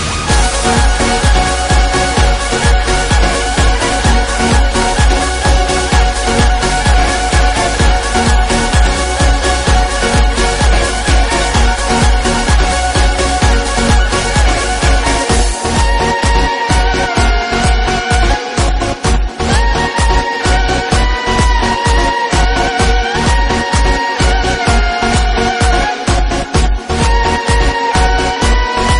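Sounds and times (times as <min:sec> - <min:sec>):
electric violin: 0:00.0 - 0:28.9.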